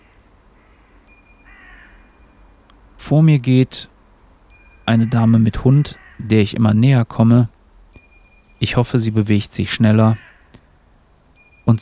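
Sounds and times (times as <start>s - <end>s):
crow-like birds cawing while circling over a field: 0.0s - 2.5s, 4.9s - 6.4s, 10.0s - 10.8s
steady outdoor hiss: 0.0s - 11.7s
speech: 3.1s - 3.9s, 4.9s - 7.6s, 8.6s - 10.3s.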